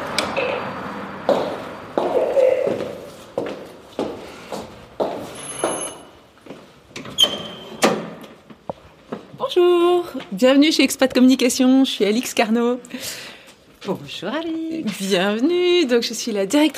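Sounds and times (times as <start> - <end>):
footsteps walking in on a hard floor: 1.3 - 6.8
door opening with a creak and a clunk at agency offices: 5.4 - 6.2, 7.0 - 8.3
speech: 9.6 - 16.7.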